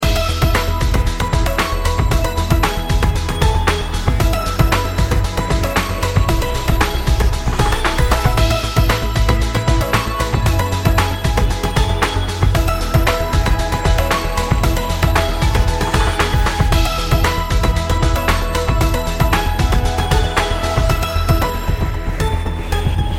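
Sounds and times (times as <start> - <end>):
background music: 0.0 - 23.1.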